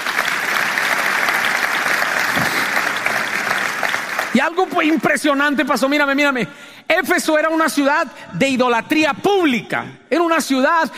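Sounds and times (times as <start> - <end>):
audience applauding: 0.0 - 5.6
speech: 4.4 - 10.9.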